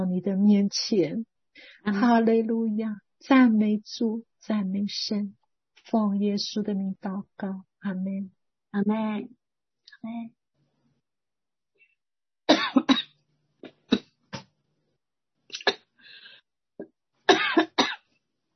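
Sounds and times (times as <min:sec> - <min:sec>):
speech: 0:00.1 - 0:09.4, 0:10.0 - 0:10.4
person coughing: 0:12.5 - 0:13.1, 0:17.3 - 0:18.0.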